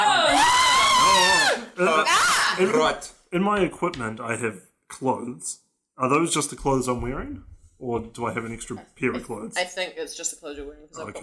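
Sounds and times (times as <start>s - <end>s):
person screaming high-pitched: 0.0s - 2.9s
speech: 1.8s - 11.2s.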